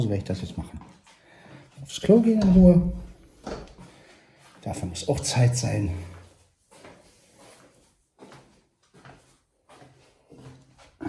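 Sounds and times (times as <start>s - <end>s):
speech: 0.0s - 0.9s, 1.9s - 3.6s, 4.6s - 6.1s
window being closed: 2.3s - 3.3s.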